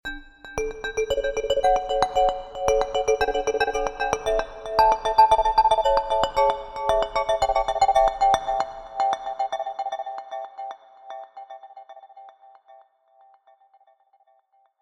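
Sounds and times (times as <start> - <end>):
marimba echo melody played with mallets: 0.6 - 9.8.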